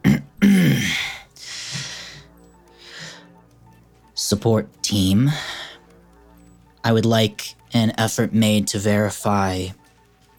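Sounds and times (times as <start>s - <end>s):
woman clearing her throat: 0.0s - 1.0s
breathy rustle: 0.4s - 3.4s, 5.2s - 6.0s
speech: 4.3s - 5.6s, 6.8s - 9.8s.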